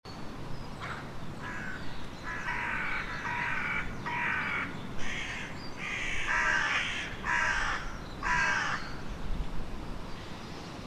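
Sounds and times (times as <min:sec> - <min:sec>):
carrion crow Corvus corone cawing: 0:00.8 - 0:08.9.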